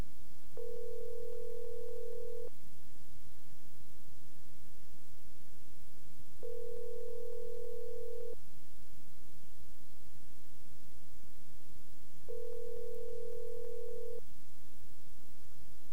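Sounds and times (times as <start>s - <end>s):
telephone ringback tone heard down the line: 0.6s - 2.5s, 6.4s - 8.4s, 12.3s - 14.2s.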